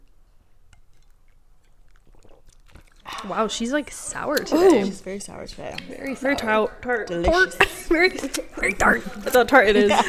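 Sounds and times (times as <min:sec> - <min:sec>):
swallow-like burst: 0:00.9 - 0:04.9
sipping slurps of a martini: 0:00.9 - 0:05.0
speech: 0:03.2 - 0:10.0
laughter: 0:07.5 - 0:10.0.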